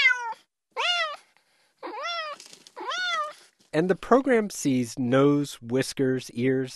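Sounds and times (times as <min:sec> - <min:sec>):
cat meowing: 0:00.0 - 0:03.5
speech: 0:03.7 - 0:06.7.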